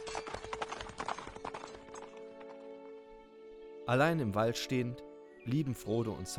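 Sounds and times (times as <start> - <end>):
horse hooves clip-clopping: 0.0 - 3.2
speech: 3.9 - 6.3.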